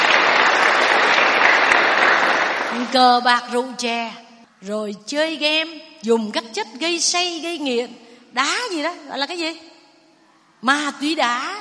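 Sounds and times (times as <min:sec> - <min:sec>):
audience applause at a talk: 0:00.0 - 0:03.0
speech: 0:02.9 - 0:09.7, 0:10.6 - 0:11.6.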